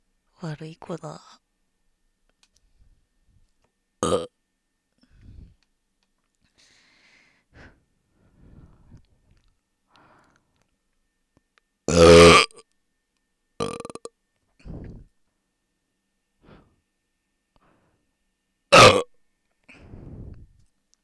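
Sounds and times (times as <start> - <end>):
speech: 0.4 - 1.4
long drawn-out belch: 4.0 - 4.3, 11.9 - 12.6, 13.6 - 14.1, 18.7 - 19.1
loud burping: 4.0 - 4.3, 11.9 - 12.6, 13.6 - 14.1, 18.7 - 19.1.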